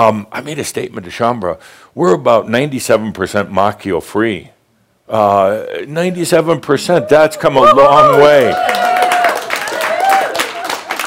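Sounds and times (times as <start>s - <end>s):
speech: 0.0s - 8.8s
people cheering and whooping: 6.8s - 11.0s
crowd applauding: 7.6s - 11.0s.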